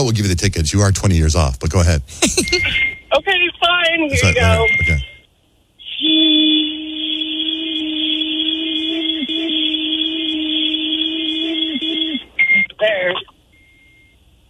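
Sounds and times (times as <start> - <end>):
speech: 0.0 - 5.1
breathalyzer beeping while warming up: 2.2 - 3.1, 4.1 - 5.2, 5.8 - 12.7.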